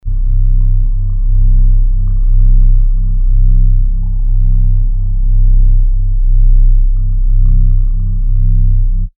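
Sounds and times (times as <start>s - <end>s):
low frequency drone: 0.0s - 9.1s.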